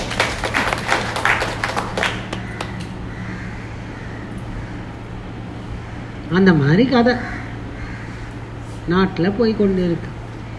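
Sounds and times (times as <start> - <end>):
audience clapping during a talk: 0.0 - 3.0
low steady hum: 0.0 - 10.5
speech: 6.3 - 7.4, 8.9 - 10.2.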